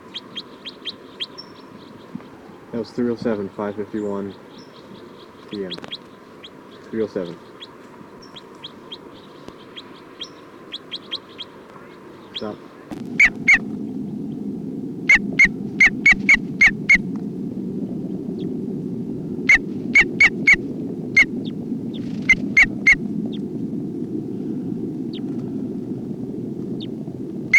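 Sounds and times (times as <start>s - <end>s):
bird alarm calls: 0.0s - 2.5s, 3.6s - 13.6s, 19.5s - 20.6s, 22.0s - 23.0s
steady low hum: 0.0s - 27.5s
speech: 2.7s - 4.5s, 5.5s - 6.0s, 6.9s - 7.5s, 12.4s - 12.6s.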